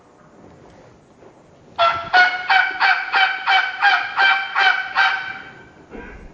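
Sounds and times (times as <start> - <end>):
latex mouth call imitating a turkey, raspy yelps with tongue flat: 1.8 - 5.6.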